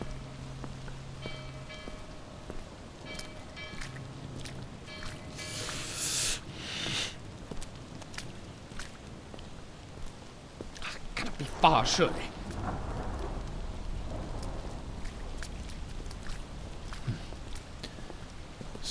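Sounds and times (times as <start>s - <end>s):
faint sustained tones: 0.0s - 7.0s
scattered drips: 0.0s - 18.8s
steady rain: 0.0s - 18.8s
speech: 11.6s - 12.3s.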